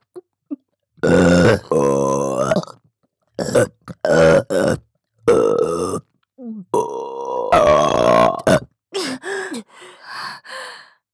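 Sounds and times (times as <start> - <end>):
burping: 1.0 - 2.8, 3.4 - 6.1, 6.7 - 8.7
breathy sighs: 9.0 - 11.0.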